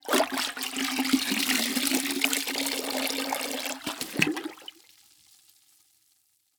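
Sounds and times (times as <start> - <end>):
mop submerging into mop bucket: 0.0 - 4.8
mop lifting out of water in mop bucket: 3.7 - 4.7.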